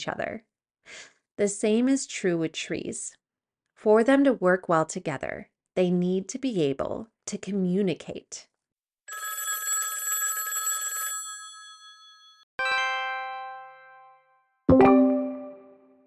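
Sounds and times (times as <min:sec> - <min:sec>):
speech: 0:00.0 - 0:03.2, 0:03.8 - 0:08.5
old-style telephone bell ringing: 0:09.1 - 0:13.0.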